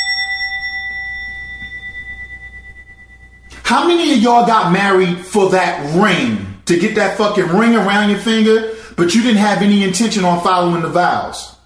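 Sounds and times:
bell ringing with sustained metallic tone: 0:00.0 - 0:04.4
speech: 0:03.7 - 0:11.5.

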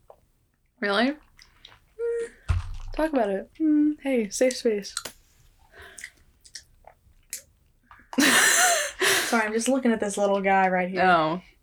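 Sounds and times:
speech: 0:00.8 - 0:01.3, 0:03.0 - 0:05.1, 0:08.4 - 0:11.5
wet mouth clicks and smacks chewing soft boba pearls: 0:05.9 - 0:08.2.

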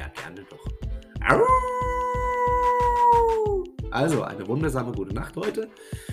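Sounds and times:
speech: 0:00.3 - 0:01.8, 0:03.9 - 0:06.1
person imitating a wolf howl: 0:01.2 - 0:03.8.

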